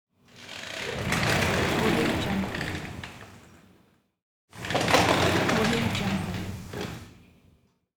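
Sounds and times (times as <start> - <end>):
sliding door on wheels: 0.3 - 3.6, 4.6 - 7.2.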